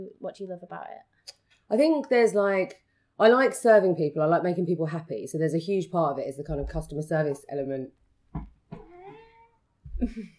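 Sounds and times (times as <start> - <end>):
speech: 0.0 - 8.5, 10.0 - 10.3
cat meowing: 8.7 - 9.6.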